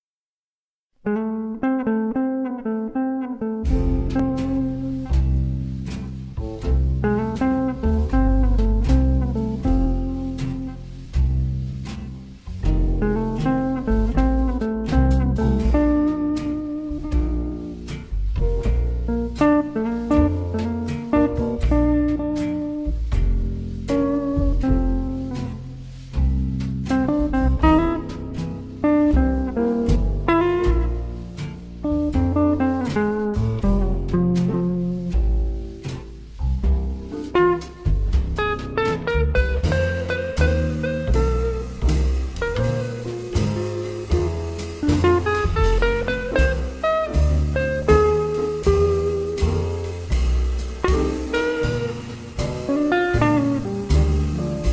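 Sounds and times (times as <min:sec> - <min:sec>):
jazz guitar piece in F: 0:00.0 - 0:54.7.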